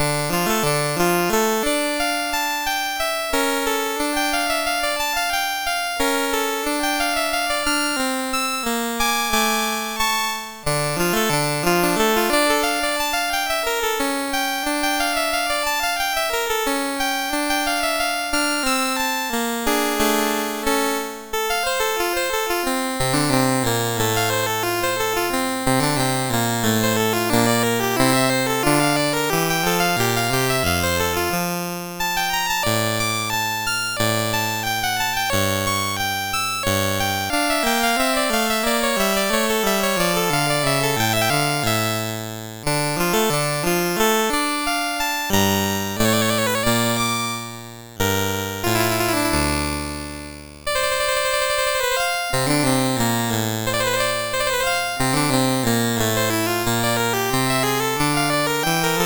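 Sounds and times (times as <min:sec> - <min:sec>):
chiptune music on a MOS6581R4 sound chip: 0:00.0 - 0:59.0.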